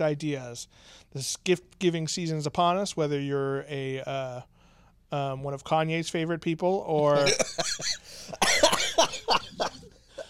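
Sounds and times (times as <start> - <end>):
speech: 0.0 - 8.3
person coughing in hacking bursts: 7.2 - 10.2
throat clearing: 9.7 - 10.2.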